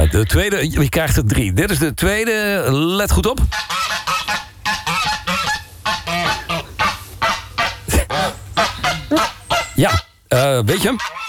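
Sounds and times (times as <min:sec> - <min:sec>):
speech: 0:00.1 - 0:04.0, 0:09.8 - 0:11.2
Egyptian geese honking: 0:03.5 - 0:11.2.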